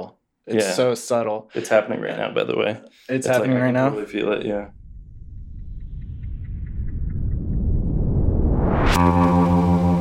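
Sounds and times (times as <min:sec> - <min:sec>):
speech: 0:00.5 - 0:04.8
loud steady buzzy droning tone: 0:03.9 - 0:10.0
deep rumbling hum: 0:04.6 - 0:10.0
rising whoosh: 0:04.6 - 0:10.0.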